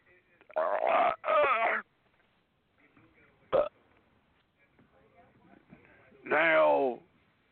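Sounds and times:
loud drawn-out burps: 0:00.5 - 0:01.8, 0:03.5 - 0:03.8.

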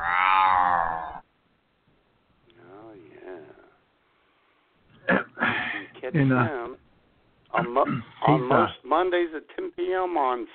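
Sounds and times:
cat meowing: 0:00.0 - 0:01.2
speech: 0:06.1 - 0:06.6, 0:07.8 - 0:10.5.

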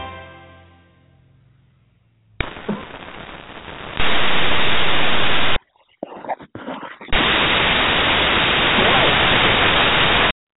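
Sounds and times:
loud broadband radio static hissing: 0:02.4 - 0:05.6, 0:07.1 - 0:10.3
faint crackling: 0:02.4 - 0:10.3.

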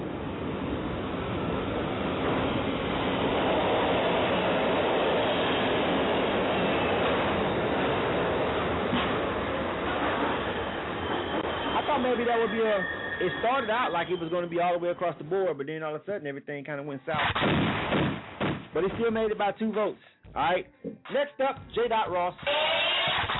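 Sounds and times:
subway train rumbling with wheels and rail noise: 0:00.0 - 0:15.4
speech: 0:12.1 - 0:17.8, 0:18.8 - 0:23.0.

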